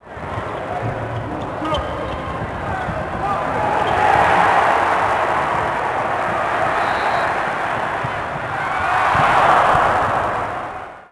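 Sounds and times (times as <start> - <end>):
basketball game broadcast on TV: 0.0 - 11.0.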